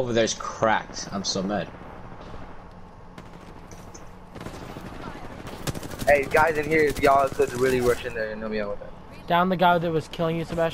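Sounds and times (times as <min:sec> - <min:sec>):
speech: 0:00.0 - 0:01.8, 0:06.1 - 0:10.7
gunfire in a shooter video game: 0:00.8 - 0:08.2.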